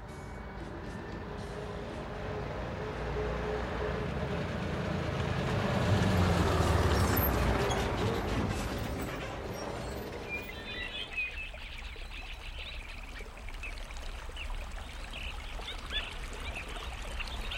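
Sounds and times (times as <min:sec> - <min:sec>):
coach bus engine rumble: 0:00.0 - 0:10.9
coach bus road noise: 0:00.0 - 0:17.5.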